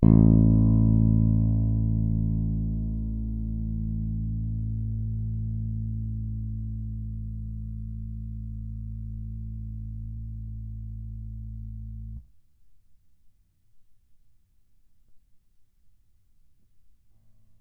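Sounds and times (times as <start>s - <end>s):
fat bass played with fingers: 0.0s - 12.3s.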